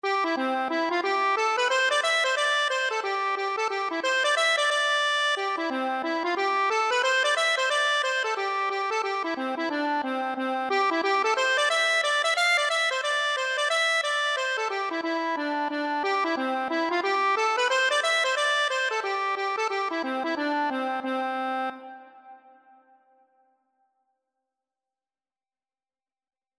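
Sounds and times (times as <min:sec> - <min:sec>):
accordion air: 0:00.0 - 0:22.4.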